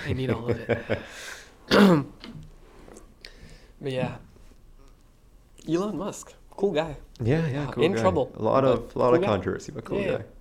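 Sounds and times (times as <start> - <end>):
speech: 0.0 - 2.4, 3.8 - 4.3, 5.6 - 10.3
single rough throaty cough: 1.7 - 2.4
faint trailing breath: 2.6 - 3.8.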